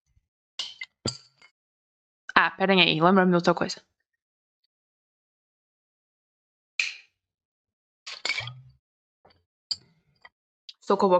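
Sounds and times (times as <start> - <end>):
speech: 2.4 - 4.0, 10.9 - 11.1
plastic water bottle cap twisted open: 8.1 - 8.6.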